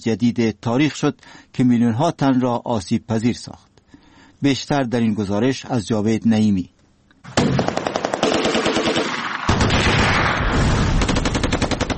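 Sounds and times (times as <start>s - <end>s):
speech: 0.0s - 3.7s, 4.4s - 7.6s
automatic gunfire from more than one weapon: 7.3s - 11.9s.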